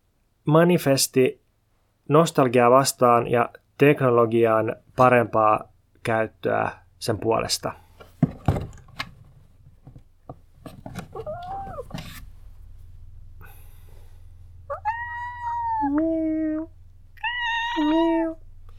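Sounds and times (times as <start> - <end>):
speech: 0.5 - 1.4, 2.1 - 7.8
knocks and clattering: 8.2 - 11.2
cat at home meowing and yowling: 11.2 - 11.9, 14.7 - 18.4.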